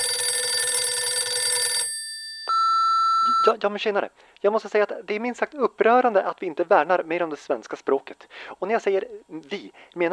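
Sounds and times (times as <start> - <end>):
telephone bell ringing for incoming call: 0.0 - 3.6
steady electronic beep: 2.5 - 3.6
speech: 3.5 - 10.1.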